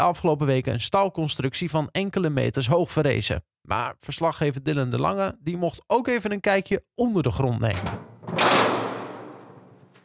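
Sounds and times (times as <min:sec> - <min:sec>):
speech: 0:00.0 - 0:08.5
heavy metal door grinding open in a large enclosed space: 0:07.8 - 0:10.0.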